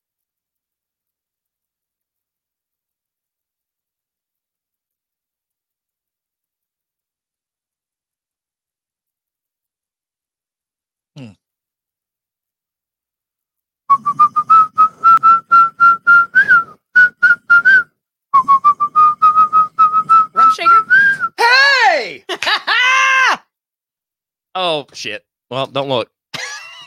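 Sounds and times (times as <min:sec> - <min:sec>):
speech: 0:11.2 - 0:11.4, 0:24.7 - 0:26.1
person whistling a hip-hop song melody: 0:13.9 - 0:21.4
laughter: 0:22.2 - 0:23.0.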